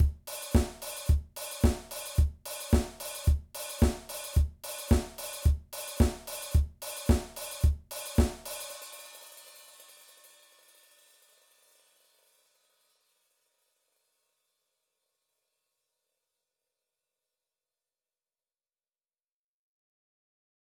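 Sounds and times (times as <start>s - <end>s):
disco drum beat: 0.0s - 9.0s.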